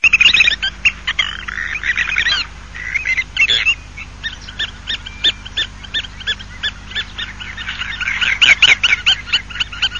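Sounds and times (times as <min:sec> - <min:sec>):
small hen: 0:00.0 - 0:09.9.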